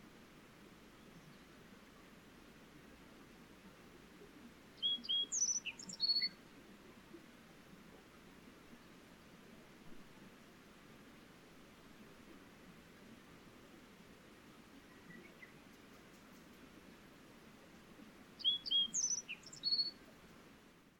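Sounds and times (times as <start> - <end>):
steady low background hiss: 0.0 - 20.9
wild bird short high whistled notes: 18.4 - 19.9.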